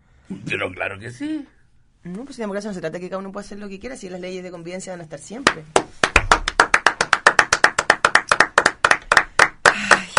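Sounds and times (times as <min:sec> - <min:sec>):
speech: 0:00.3 - 0:06.2
rhythmic audience clapping and applause: 0:05.4 - 0:10.1.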